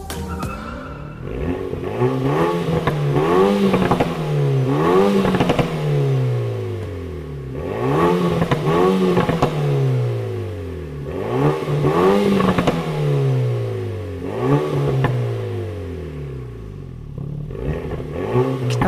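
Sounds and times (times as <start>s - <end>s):
Renault Mégane R.S. Trophy engine revving: 0.0s - 18.8s
exhaust pops: 1.2s - 7.1s, 8.2s - 9.8s.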